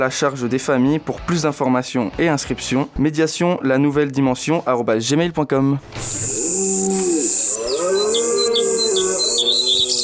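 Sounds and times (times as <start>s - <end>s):
speech: 0.0s - 7.1s
short high bird chirps: 6.0s - 10.0s
cow's low drawn-out mooing: 6.3s - 10.0s.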